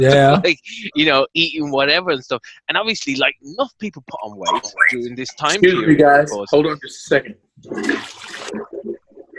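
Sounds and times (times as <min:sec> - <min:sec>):
speech: 0:00.0 - 0:08.7
toilet flushing with a hissing rush of water: 0:07.6 - 0:09.3
water gurgling as the toilet bowl drains: 0:07.6 - 0:09.3.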